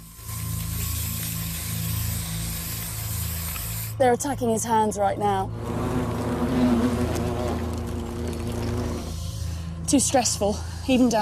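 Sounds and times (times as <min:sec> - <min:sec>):
aerosol spray hissing onto a hornet nest: 0:00.0 - 0:04.0, 0:05.6 - 0:09.6
speech: 0:04.0 - 0:05.8, 0:09.9 - 0:11.2.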